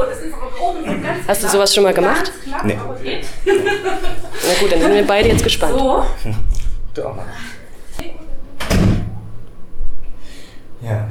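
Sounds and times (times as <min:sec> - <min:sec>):
speech: 0:00.0 - 0:08.2, 0:10.8 - 0:11.0
laughter: 0:03.1 - 0:06.4
door closing with a click and thud: 0:08.6 - 0:09.3.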